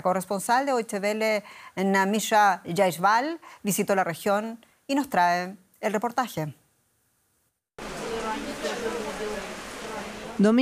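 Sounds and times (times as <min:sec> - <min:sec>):
speech: 0:00.0 - 0:06.6, 0:10.4 - 0:10.5
steady rain falling on an outdoor market in Bohodukiv: 0:07.8 - 0:10.5.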